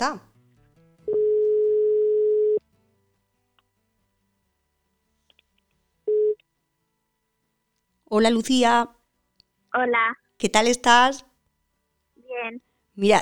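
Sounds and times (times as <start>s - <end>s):
speech: 0.0s - 0.3s, 8.1s - 9.0s, 9.7s - 11.3s, 12.4s - 13.1s
phone ringback tone while a call connects: 1.1s - 2.6s.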